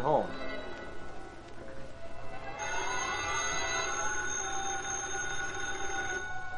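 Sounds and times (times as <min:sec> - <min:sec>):
telephone ringing in an apartment: 0:02.5 - 0:06.5.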